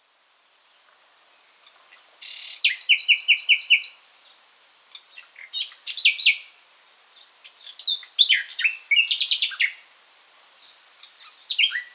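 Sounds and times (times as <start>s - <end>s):
common nightingale song, Luscinia megarhynchos: 0.6s - 9.9s, 10.5s - 11.9s.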